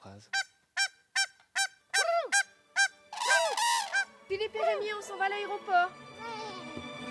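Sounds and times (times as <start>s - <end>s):
speech: 0.2s - 0.4s, 4.5s - 6.8s
swans calling with loud nasal honks: 0.4s - 5.8s.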